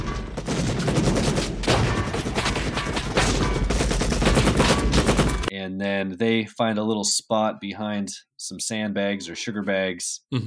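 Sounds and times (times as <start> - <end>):
gunfire from guerrillas in an action film scene: 0.0 - 5.5
speech: 6.0 - 10.4.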